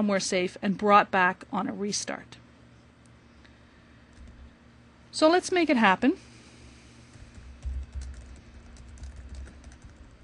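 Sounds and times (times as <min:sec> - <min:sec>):
speech: 0:00.0 - 0:02.4, 0:05.2 - 0:06.3
rapid typing on a computer keyboard: 0:07.1 - 0:10.2.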